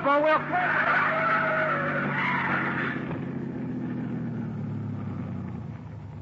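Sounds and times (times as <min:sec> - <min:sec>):
car tires squealing in a long skid: 0:00.0 - 0:03.8
heavy rumbling engine: 0:00.0 - 0:06.2
speech: 0:00.1 - 0:01.2.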